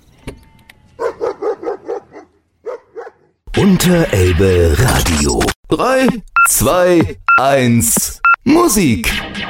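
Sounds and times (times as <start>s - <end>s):
dog barking: 1.0s - 3.4s
speech: 3.6s - 9.4s.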